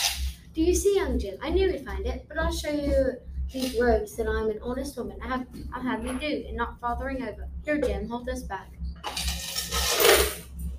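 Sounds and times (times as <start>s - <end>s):
speech: 0.7s - 9.2s
gold coins clinking and jingling in a canvas bag as they are sorted: 9.2s - 10.4s.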